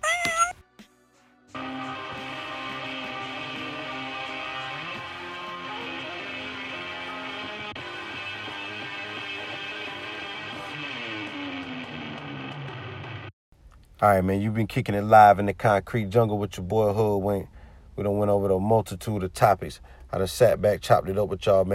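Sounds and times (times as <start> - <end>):
cat meowing and yowling: 0.0 - 0.6
speech: 14.0 - 21.7.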